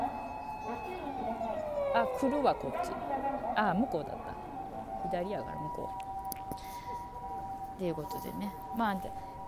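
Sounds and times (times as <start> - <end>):
nearby ambulance siren wailing: 0.0 - 9.4
street noise: 0.0 - 9.4
speech: 2.0 - 4.3, 5.0 - 6.7, 7.8 - 9.3.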